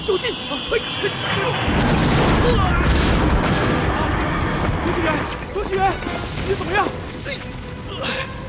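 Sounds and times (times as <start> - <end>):
speech: 0.0 - 3.4, 4.9 - 8.4
enemy artillery cannon firing in a wartime battle: 1.7 - 5.4.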